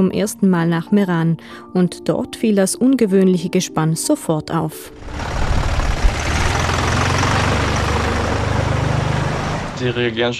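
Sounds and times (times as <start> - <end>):
speech: 0.0 - 5.4, 9.8 - 10.3
tractor engine idling: 5.0 - 10.3.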